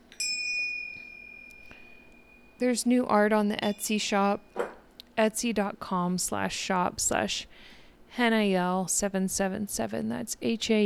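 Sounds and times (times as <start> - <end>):
bright metallic bell ding: 0.1 - 2.6
speech: 2.6 - 4.5, 5.2 - 10.8.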